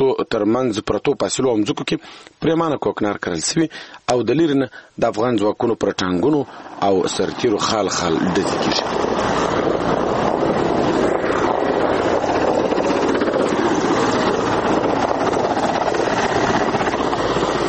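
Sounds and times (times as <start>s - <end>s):
speech: 0.0s - 10.1s
military helicopters circling overhead: 6.0s - 17.6s
wind buffeting: 6.2s - 17.6s.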